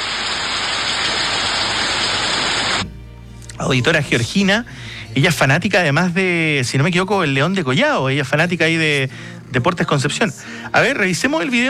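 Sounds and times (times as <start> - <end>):
steady dense rain pouring in a hissing wash: 0.0 - 2.9
speech: 3.6 - 11.6.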